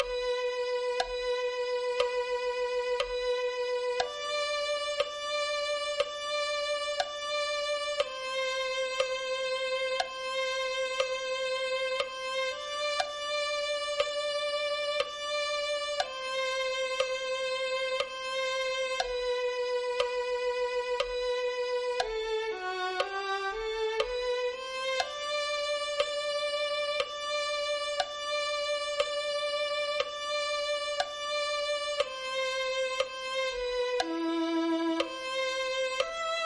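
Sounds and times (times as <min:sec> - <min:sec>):
violin melody: 0:00.0 - 0:36.4.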